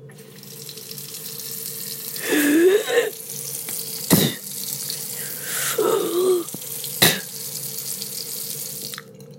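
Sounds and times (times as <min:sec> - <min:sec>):
tap water running into a sink: 0:00.0 - 0:09.3
gurgling swishing mouth rinsing: 0:01.9 - 0:07.7.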